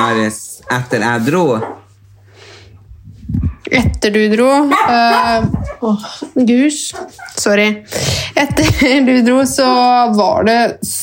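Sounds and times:
dogs barking: 0:00.0 - 0:02.0, 0:04.6 - 0:05.9, 0:06.9 - 0:07.6
low steady hum: 0:00.0 - 0:11.0
speech: 0:00.2 - 0:01.8, 0:03.3 - 0:11.0.

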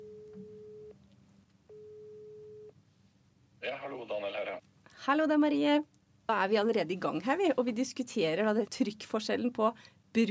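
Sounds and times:
telephone ringing tone while placing a call: 0:00.0 - 0:00.9, 0:01.7 - 0:02.7
speech: 0:03.8 - 0:10.3.

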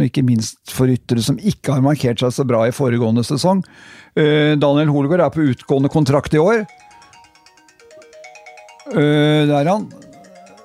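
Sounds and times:
speech: 0:00.0 - 0:06.8, 0:08.9 - 0:10.0
phone electronic ringtone: 0:05.6 - 0:10.6.

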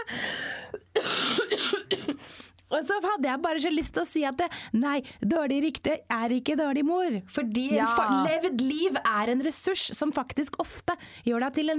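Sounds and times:
speech: 0:00.0 - 0:11.7
harsh raspy coughing fit: 0:00.6 - 0:02.3.

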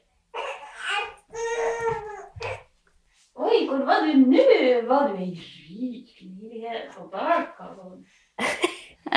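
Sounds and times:
baby crying and whimpering: 0:00.3 - 0:02.7
speech: 0:04.0 - 0:09.1.

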